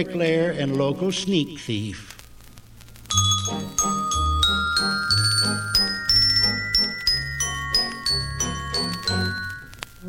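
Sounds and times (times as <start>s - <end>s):
speech: 0.0s - 2.2s
bell melody: 3.1s - 9.9s.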